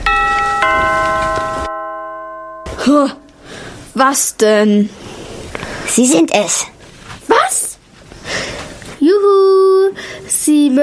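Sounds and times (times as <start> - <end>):
doorbell chiming: 0.0 - 3.7
speech: 2.8 - 3.2, 4.0 - 5.1, 5.9 - 6.7, 9.2 - 10.8.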